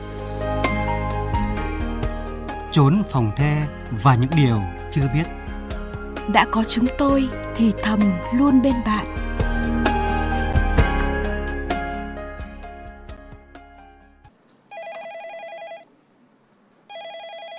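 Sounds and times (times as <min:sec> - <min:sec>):
music: 0:00.0 - 0:14.3
speech: 0:02.8 - 0:05.4, 0:06.3 - 0:09.2
electronic telephone ringing: 0:14.7 - 0:15.9, 0:16.9 - 0:17.5.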